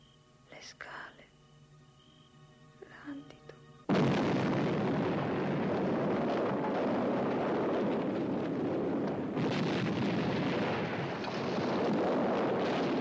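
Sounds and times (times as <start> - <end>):
speech: 0.7 - 1.3, 2.9 - 3.6
explosions from a film scene: 3.9 - 12.9.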